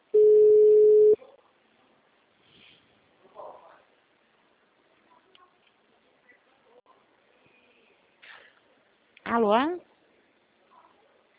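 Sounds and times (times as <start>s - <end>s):
steady mid-pitched telephone call tone: 0.2s - 1.2s
speech: 9.4s - 9.8s.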